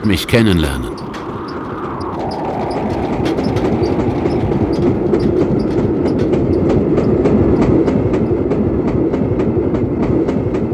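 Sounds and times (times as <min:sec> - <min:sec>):
speech: 0:00.0 - 0:01.0
train rumbling along the tracks: 0:00.0 - 0:10.7
wheels clattering over rail joints: 0:01.0 - 0:09.0.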